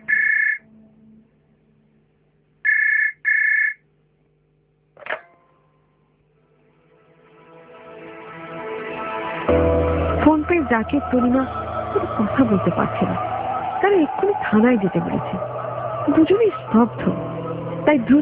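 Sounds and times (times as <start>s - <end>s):
telephone ringing with a call from a police station: 0.0s - 0.6s, 2.7s - 3.8s
rising drone: 7.5s - 18.2s
speech: 10.7s - 17.2s, 17.9s - 18.2s.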